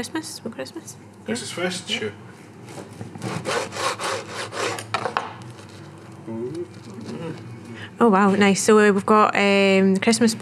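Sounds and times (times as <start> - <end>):
speech: 0.0 - 3.9, 6.3 - 10.4
knife sawing through crisp pastry crust of a chicken and cranberry pie: 3.2 - 4.9.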